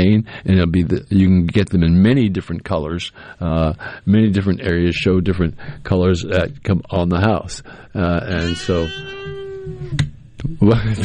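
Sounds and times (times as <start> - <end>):
speech: 0.0 - 9.3, 9.9 - 11.0
microphone squeaking while being turned: 8.2 - 10.6.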